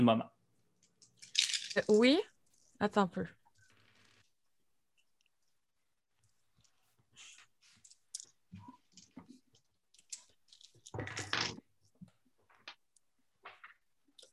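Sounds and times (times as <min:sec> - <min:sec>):
speech: 0:00.0 - 0:00.4, 0:01.8 - 0:03.4
dice dropped and rolling: 0:01.0 - 0:02.0, 0:10.0 - 0:11.7.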